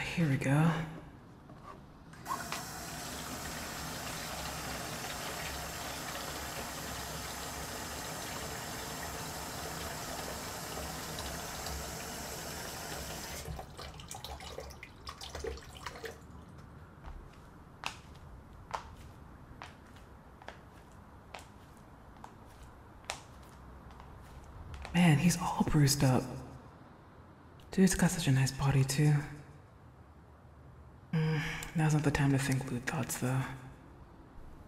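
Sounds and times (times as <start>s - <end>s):
speech: 0.1s - 0.9s, 25.3s - 26.3s, 27.7s - 29.4s, 31.8s - 33.7s
running warm soapy water for washing cuts: 2.3s - 16.2s.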